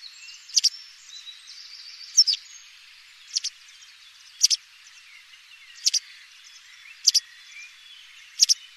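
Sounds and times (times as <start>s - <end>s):
white wagtail calls: 0.0s - 0.7s, 2.1s - 2.4s, 3.3s - 3.6s, 4.4s - 4.6s, 5.8s - 6.1s, 6.9s - 7.2s, 8.4s - 8.6s
soft high background twittering: 0.0s - 8.7s.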